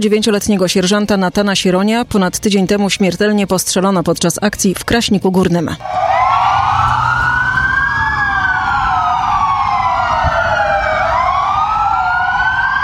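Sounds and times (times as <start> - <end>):
speech: 0.0 - 6.1
police car sirens wailing: 5.8 - 12.8.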